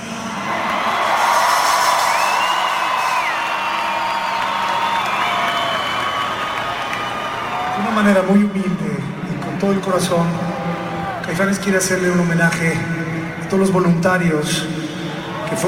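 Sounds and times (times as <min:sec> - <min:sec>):
large concert crowd cheering with whoops and shouts: 0:00.4 - 0:08.1, 0:10.4 - 0:11.3
large concert crowd clapping: 0:00.4 - 0:08.1
speech: 0:08.0 - 0:08.8, 0:09.6 - 0:10.4, 0:11.3 - 0:14.8.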